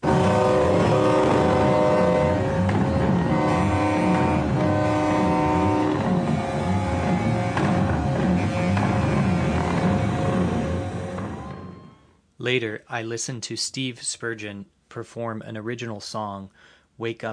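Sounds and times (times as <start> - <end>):
semi truck horns blaring: 0.0 - 11.2
speech: 12.4 - 17.3.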